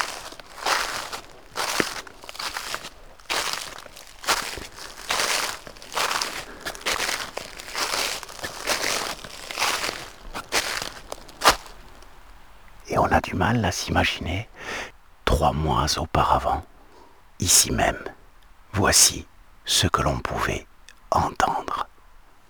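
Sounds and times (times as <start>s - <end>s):
footsteps crunching through a thick carpet of dead leaves: 0.0s - 12.4s
speech: 13.0s - 16.7s, 17.4s - 18.1s, 18.8s - 21.7s.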